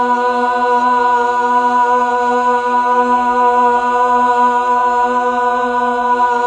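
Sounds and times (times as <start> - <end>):
Mellotron female choir: 0.0 - 6.4.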